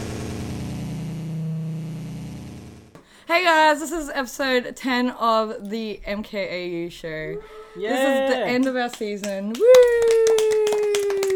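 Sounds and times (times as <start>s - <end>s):
steady high-pitched hum: 0.0s - 2.8s
speech: 3.3s - 10.5s
quick uneven hand clapping: 8.2s - 11.3s.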